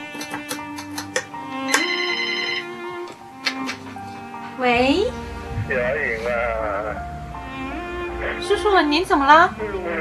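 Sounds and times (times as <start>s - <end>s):
melodic phone ringtone of an incoming phone call: 1.6s - 3.0s
speech: 4.6s - 9.9s.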